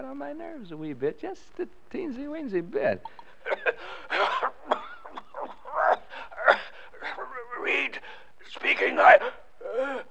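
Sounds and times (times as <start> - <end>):
speech: 0.0 - 4.4, 8.6 - 10.0
man with a bad cough coughing: 3.2 - 7.2.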